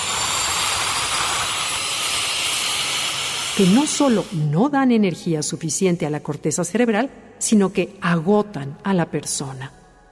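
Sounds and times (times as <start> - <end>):
airplane jet engine roaring during takeoff: 0.0 - 4.5
speech: 3.6 - 9.8.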